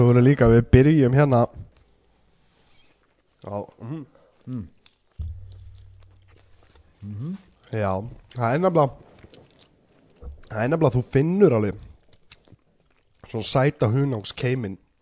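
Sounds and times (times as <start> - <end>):
speech: 0.0 - 1.6, 3.4 - 4.8, 7.0 - 9.0, 10.5 - 11.9, 13.3 - 14.8
chewing food and mouth smacking into the microphone: 2.8 - 8.4, 9.0 - 10.6, 11.8 - 13.4.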